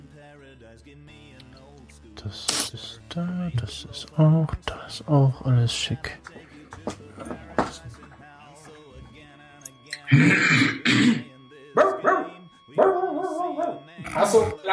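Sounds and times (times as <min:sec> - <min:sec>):
soft vocal sounds: 0:00.0 - 0:14.7
speech: 0:00.6 - 0:07.3
dog barking in loud harsh bursts: 0:11.8 - 0:13.9.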